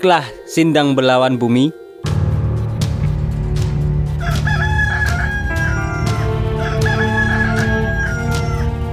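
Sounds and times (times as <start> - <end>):
speech: 0.0 - 1.8
low rumbling noise: 2.1 - 8.4
rooster crowing: 4.2 - 8.9.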